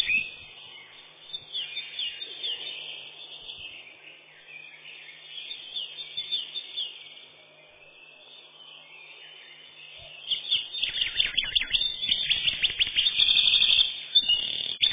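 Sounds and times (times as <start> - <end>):
Eurasian wren Troglodytes troglodytes song with twittering and fast high trills: 0.0 - 14.9.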